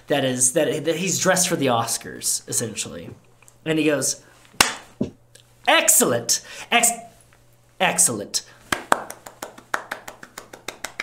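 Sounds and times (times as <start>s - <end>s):
speech: 0.1s - 4.7s, 5.7s - 7.1s, 7.8s - 8.6s
audience clapping in a quick steady rhythm: 8.7s - 11.0s.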